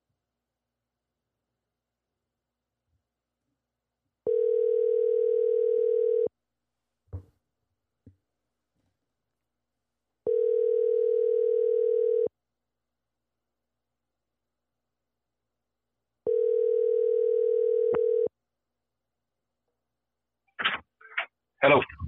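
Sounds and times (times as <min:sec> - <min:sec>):
telephone ringback tone while placing a call: 0:04.3 - 0:06.3, 0:10.3 - 0:12.3, 0:16.3 - 0:18.3
speech: 0:21.6 - 0:22.0.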